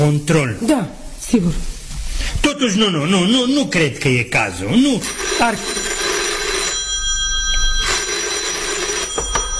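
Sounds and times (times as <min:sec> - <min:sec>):
speech: 0:00.0 - 0:05.9
telephone ringing with metallic bell trill: 0:05.0 - 0:09.5.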